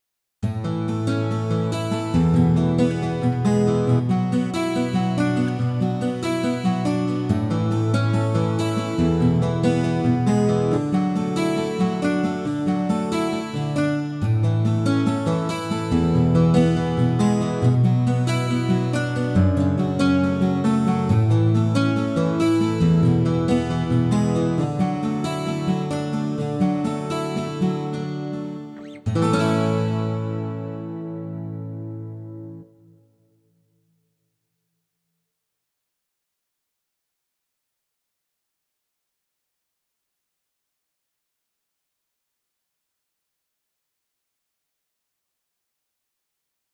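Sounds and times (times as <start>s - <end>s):
combination of all guitars playing: 0.7s - 32.7s.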